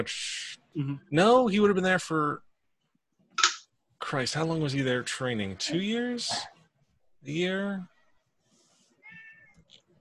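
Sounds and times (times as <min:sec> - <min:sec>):
speech: 0:00.0 - 0:02.5, 0:04.0 - 0:06.5, 0:07.2 - 0:07.9
cat meowing: 0:09.0 - 0:09.8.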